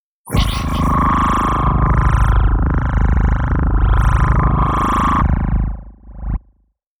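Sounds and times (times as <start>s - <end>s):
rising electronic robotic sound: 0.3s - 5.7s.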